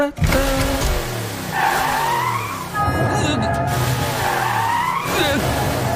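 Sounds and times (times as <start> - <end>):
car engine sputtering and roaring: 0.2 - 5.9
car tires squealing: 1.2 - 5.9.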